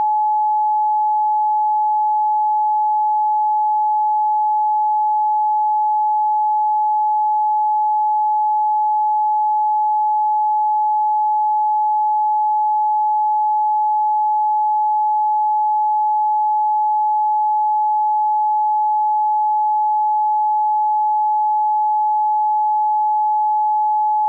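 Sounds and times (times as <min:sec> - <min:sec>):
pure 852 Hz tone: 0:00.0 - 0:24.2.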